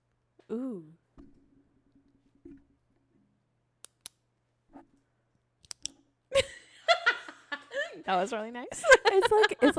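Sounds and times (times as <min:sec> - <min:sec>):
speech: 0:00.5 - 0:01.0, 0:08.1 - 0:09.7
pen clicking: 0:05.6 - 0:06.0
laughter or giggling: 0:06.3 - 0:08.0, 0:08.7 - 0:09.7.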